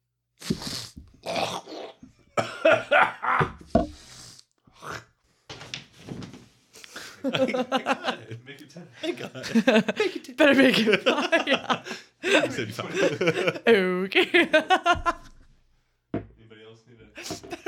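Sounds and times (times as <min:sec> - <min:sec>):
laughter: 0:02.4 - 0:03.6, 0:07.0 - 0:15.4, 0:17.2 - 0:17.6
person coughing and clearing phlegm from the throat: 0:02.4 - 0:04.0
speech: 0:07.3 - 0:15.3.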